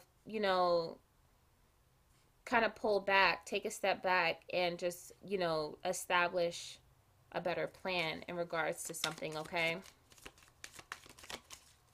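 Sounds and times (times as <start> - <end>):
speech: 0.2 - 1.1, 2.5 - 10.0
deck of cards shuffling: 8.7 - 11.9.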